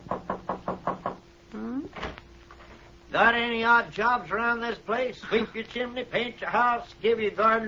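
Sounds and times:
firm knocks on the wooden back door of a house kitchen: 0.0s - 1.2s
speech: 3.1s - 7.6s.

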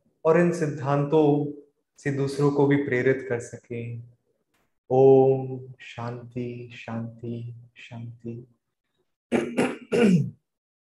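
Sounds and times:
speech: 0.2s - 4.2s, 4.9s - 8.6s, 9.3s - 10.4s
person clearing throat: 9.3s - 10.4s
raspy cough-like rumble: 9.3s - 10.4s.

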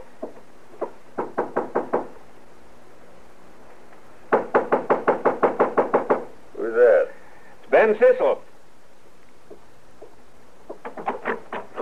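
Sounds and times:
firm knocking on a hotel room door: 0.2s - 2.1s, 4.3s - 6.3s, 9.5s - 11.7s
speech: 7.9s - 8.4s.

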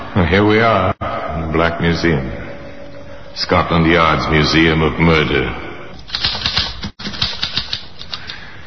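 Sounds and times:
speech: 0.2s - 2.4s, 3.3s - 6.3s
typewriter keys clacking as a letter is typed: 6.0s - 8.5s.

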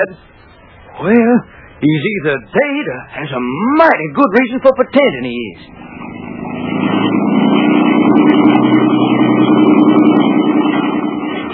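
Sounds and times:
speech: 0.0s - 0.4s, 1.0s - 7.6s
motorboat engine droning on the way out to an anchored yacht: 5.3s - 11.5s.

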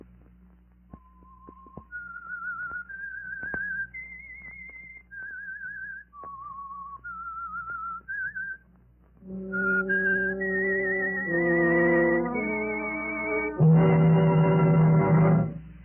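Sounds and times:
eerie whistled melody: 0.9s - 15.6s
orchestra playing: 9.2s - 15.6s.

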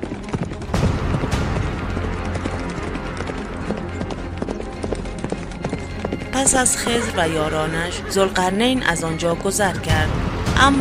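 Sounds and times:
horse hooves clip-clopping as riders set off: 0.0s - 9.4s
dense rumbling wash of noise: 0.5s - 3.9s
laughter: 6.4s - 10.0s
speech: 6.4s - 10.7s.

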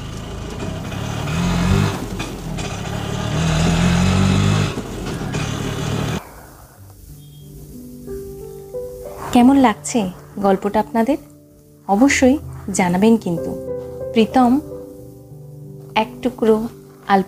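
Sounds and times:
auto rickshaw engine drone: 0.0s - 6.4s
road noise of an auto rickshaw ride: 0.0s - 17.2s
speech: 9.4s - 11.3s, 11.9s - 14.7s, 16.0s - 17.2s.

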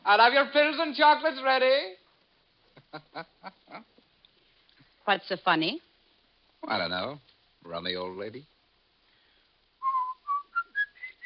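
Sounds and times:
speech: 0.1s - 2.0s, 2.9s - 4.0s, 5.0s - 5.9s, 6.6s - 8.5s
man whistling a song: 9.8s - 11.2s.

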